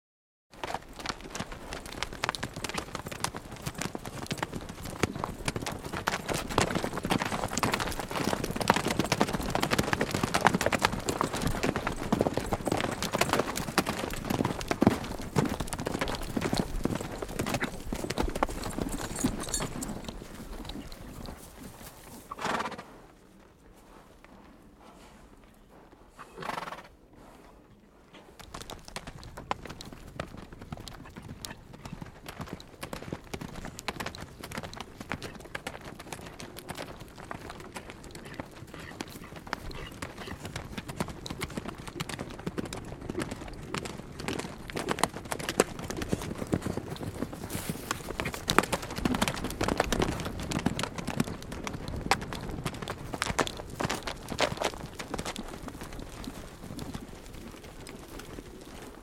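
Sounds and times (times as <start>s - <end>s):
two horses galloping: 0.5s - 59.0s.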